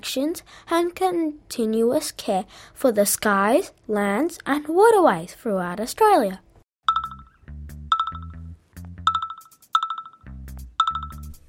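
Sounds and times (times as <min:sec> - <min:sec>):
speech: 0:00.0 - 0:06.4
phone notification chimes with short electronic chords: 0:06.9 - 0:08.4, 0:09.1 - 0:11.3.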